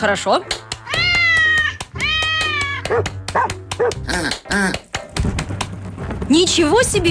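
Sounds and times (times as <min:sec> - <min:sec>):
speech: 0:00.0 - 0:00.6, 0:02.9 - 0:04.8, 0:06.3 - 0:07.0
cat meowing: 0:00.8 - 0:02.9
dog barking and yipping: 0:02.8 - 0:04.0.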